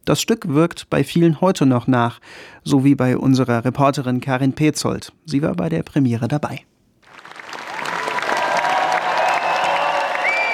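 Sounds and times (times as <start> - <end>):
speech: 0.1 - 6.7
cheering: 7.1 - 10.5
sustained applause from a large premiere audience: 7.1 - 10.5
whistles: 9.2 - 10.5.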